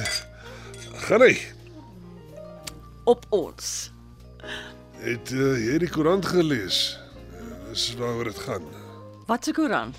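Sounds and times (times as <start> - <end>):
wine glasses clinking in a toast: 0.0 - 1.1
speech: 1.1 - 1.6, 3.1 - 7.0, 7.7 - 9.9.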